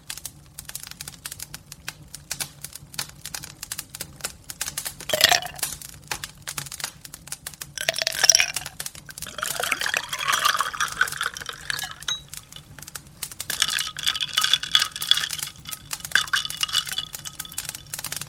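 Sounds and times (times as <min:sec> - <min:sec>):
drink being poured into a glass: 0:05.1 - 0:05.7, 0:07.8 - 0:17.9
faint glass clinks: 0:09.2 - 0:12.6, 0:13.6 - 0:17.7.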